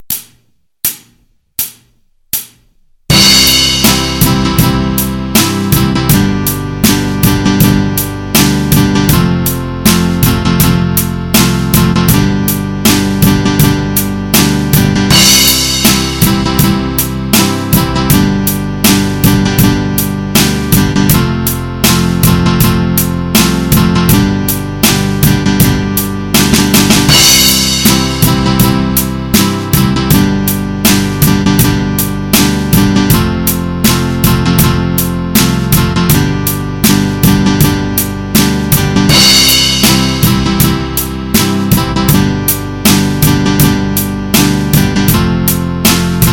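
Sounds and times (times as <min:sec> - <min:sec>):
guitar jam track in C major: 0:03.1 - 0:46.3.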